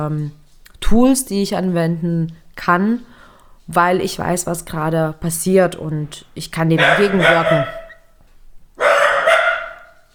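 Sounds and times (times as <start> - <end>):
speech: 0.0 - 3.1, 3.7 - 7.8
dachshund barking at a noise in the stairwell: 6.7 - 8.1, 8.8 - 10.1.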